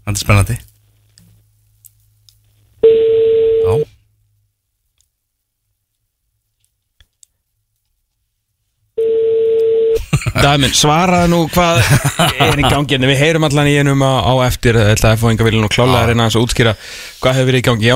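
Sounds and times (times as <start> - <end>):
speech: 0.2 - 0.7, 10.4 - 17.9
telephone line tone while a call is being placed: 2.8 - 3.9, 9.0 - 10.0
laughter: 10.0 - 12.9.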